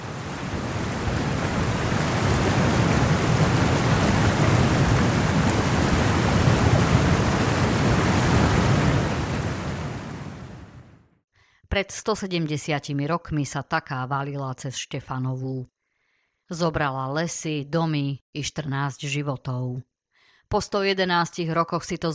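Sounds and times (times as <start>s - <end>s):
deep low thunder rumble in a strong thunderstorm: 0.0s - 10.8s
steady dense downpour in a strong thunderstorm: 0.0s - 10.9s
speech: 11.8s - 15.7s, 16.5s - 19.9s, 20.5s - 22.1s.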